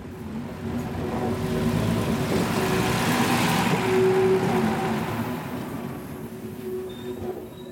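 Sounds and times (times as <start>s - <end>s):
railbus wheels rumbling over the track at a level crossing: 0.0s - 7.7s
red Uerdinger railbus engine droning: 0.0s - 7.7s.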